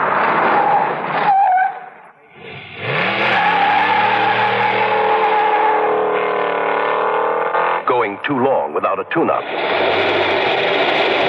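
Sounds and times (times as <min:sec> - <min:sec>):
car tires squealing as it halts: 0:00.0 - 0:08.0, 0:09.3 - 0:11.2
car engine running and revving: 0:02.3 - 0:08.4, 0:09.2 - 0:11.2
speech: 0:08.9 - 0:10.4.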